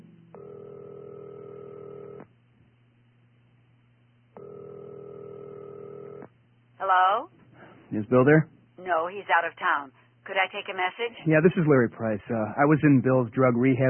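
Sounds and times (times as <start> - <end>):
low hum: 0.0 - 13.8
telephone ringing tones through a phone line: 0.4 - 2.2, 4.4 - 6.2
speech: 6.8 - 13.8.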